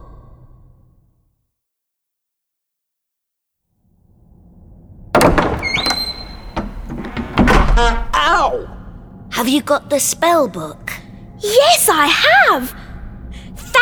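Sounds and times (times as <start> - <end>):
low quiet rumble: 4.1 - 13.8
rattling noise: 4.1 - 13.8
door bursting open with a loud clatter: 5.0 - 8.5
brief high squeak: 5.6 - 7.1
speech: 7.8 - 8.7, 9.4 - 12.8.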